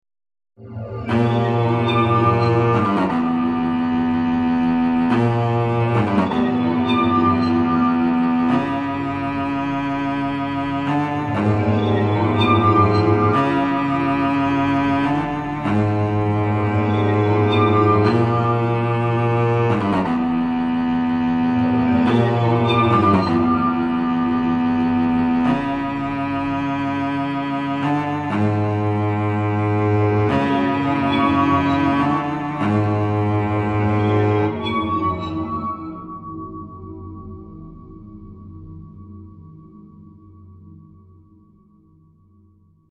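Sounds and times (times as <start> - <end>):
cello waterphone: 0.6 - 41.8.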